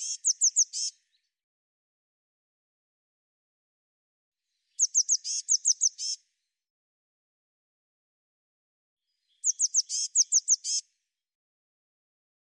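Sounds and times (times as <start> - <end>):
Eurasian blue tit giving high sharp downslurred calls: 0.0 - 0.9, 4.8 - 6.2, 9.4 - 10.8.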